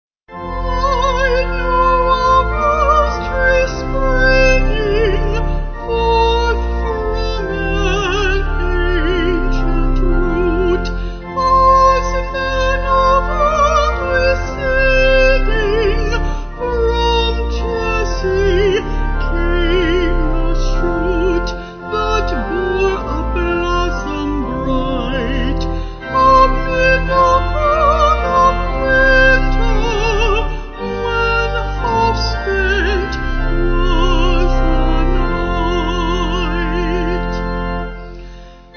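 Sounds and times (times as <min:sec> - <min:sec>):
organ: 0:00.3 - 0:38.7
person singing: 0:00.4 - 0:38.7.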